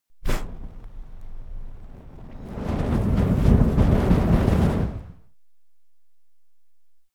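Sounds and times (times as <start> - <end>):
flamethrower medium whoosh: 0.2 - 5.3.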